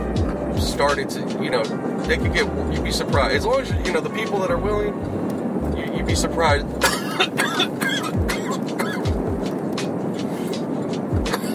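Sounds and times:
low rumble of a car interior: 0:00.0 - 0:11.5
speech: 0:00.7 - 0:08.4
person coughing in a car: 0:06.8 - 0:09.2, 0:11.3 - 0:11.5.

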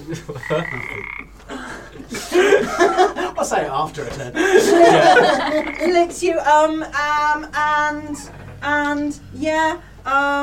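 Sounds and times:
laughter: 0:00.0 - 0:06.2
speech: 0:00.1 - 0:10.4
frog croaking: 0:00.4 - 0:01.4, 0:05.2 - 0:06.1.

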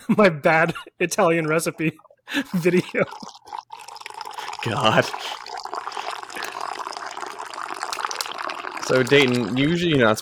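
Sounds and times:
speech: 0:00.1 - 0:03.7, 0:04.6 - 0:05.4, 0:08.9 - 0:10.2
tea pouring into a cup: 0:02.6 - 0:10.2.

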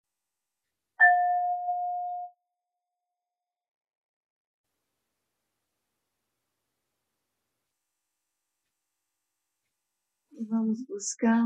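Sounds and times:
meditation bell struck at the start of a meditation: 0:01.0 - 0:02.4
speech: 0:10.4 - 0:11.4.

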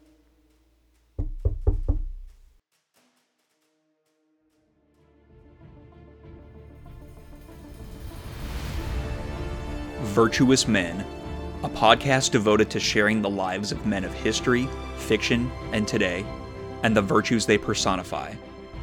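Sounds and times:
firm knocks on a door: 0:01.2 - 0:02.5
speech: 0:10.2 - 0:18.5.

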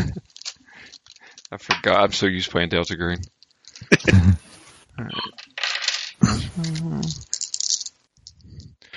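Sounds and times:
laughter: 0:00.0 - 0:00.2, 0:03.8 - 0:05.3
dice clattering and rattling as a hand digs through a dice bag: 0:00.0 - 0:01.5, 0:02.8 - 0:04.0, 0:05.3 - 0:08.6
speech: 0:01.5 - 0:04.4, 0:05.0 - 0:05.4
brief vocal murmur: 0:03.8 - 0:05.3, 0:06.2 - 0:07.3.

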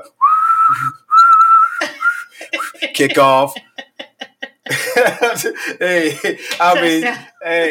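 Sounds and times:
speech: 0:00.0 - 0:01.0, 0:02.8 - 0:03.7, 0:05.0 - 0:07.6
person whistling through lips imitating a football referee's whistle: 0:00.0 - 0:02.8
laughter: 0:01.8 - 0:07.6.

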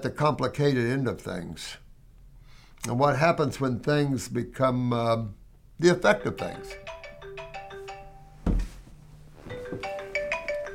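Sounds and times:
speech: 0:00.0 - 0:01.8, 0:02.8 - 0:06.9
phone ringtone playing a bright melodic pattern: 0:06.1 - 0:08.4, 0:09.4 - 0:10.7
dull thump: 0:08.4 - 0:09.0.

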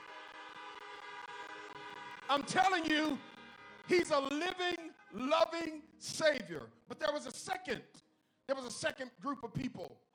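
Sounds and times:
several car horns honking together: 0:00.0 - 0:06.3
speech: 0:02.3 - 0:03.3, 0:03.9 - 0:10.1.

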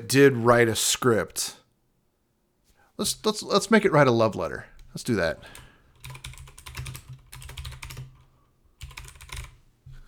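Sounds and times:
speech: 0:00.0 - 0:01.6, 0:03.0 - 0:06.3
fingers typing a prompt on a computer keyboard: 0:05.9 - 0:09.6.

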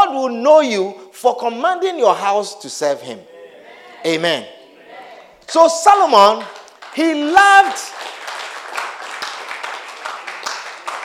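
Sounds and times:
speech: 0:00.2 - 0:03.3, 0:04.0 - 0:04.6, 0:05.5 - 0:08.1
audience clapping: 0:06.2 - 0:11.0.

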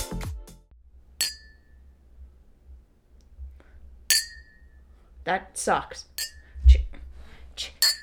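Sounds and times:
shot glasses clinking in a toast: 0:01.2 - 0:01.9, 0:04.1 - 0:04.8, 0:06.2 - 0:06.6, 0:07.8 - 0:08.0
speech: 0:05.3 - 0:06.3, 0:07.6 - 0:07.8.

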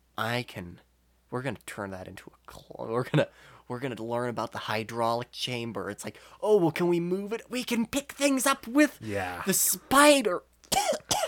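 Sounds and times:
speech: 0:00.2 - 0:11.2
person coughing: 0:10.7 - 0:11.2.

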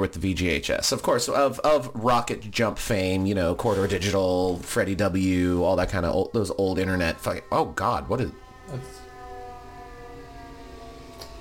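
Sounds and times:
speech: 0:00.0 - 0:09.0
ambulance siren wailing while driving up the road: 0:03.1 - 0:11.3.

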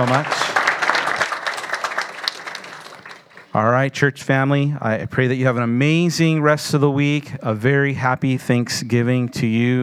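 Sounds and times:
speech: 0:00.0 - 0:00.4, 0:03.6 - 0:09.8
audience applause: 0:00.0 - 0:03.6.

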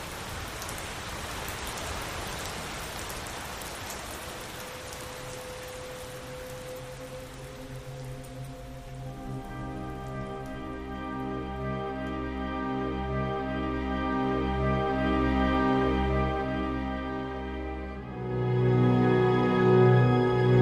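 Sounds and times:
rain pattering on a surface: 0:00.0 - 0:20.6
faint sustained tones: 0:04.4 - 0:20.6.

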